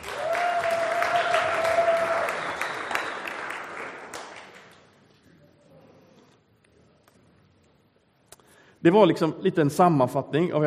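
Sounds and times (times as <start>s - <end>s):
audience applause: 0.0s - 4.9s
speech: 8.8s - 10.6s.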